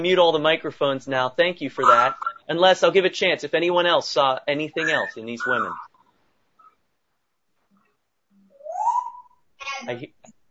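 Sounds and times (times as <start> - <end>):
speech: 0.0 - 5.9, 9.8 - 10.2
parrot giving a quiet rising whistle: 1.8 - 2.4, 4.8 - 6.0, 8.4 - 9.4
parrot giving a short raspy voice-like squawk: 1.8 - 2.5, 4.7 - 6.8, 8.5 - 9.8.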